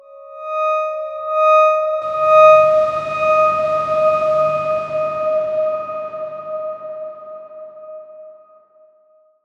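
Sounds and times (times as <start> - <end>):
soft Darkswarm synth tone on D sharp five: 2.0 - 8.2.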